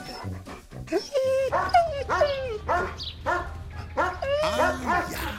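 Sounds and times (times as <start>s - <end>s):
dogs barking and yelping: 0.1s - 5.3s
dogs whimpering and whining: 0.9s - 2.8s, 4.0s - 5.3s.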